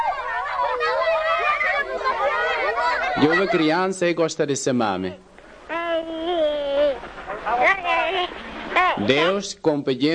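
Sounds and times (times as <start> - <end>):
many children chattering and calling out as they play: 0.0 - 4.0, 5.2 - 9.2
speech: 3.2 - 5.3, 9.0 - 10.1.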